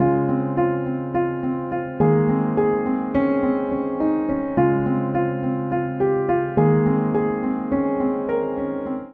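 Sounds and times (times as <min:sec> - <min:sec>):
upright piano phrase in A-flat major at 105 bpm: 0:00.0 - 0:09.1.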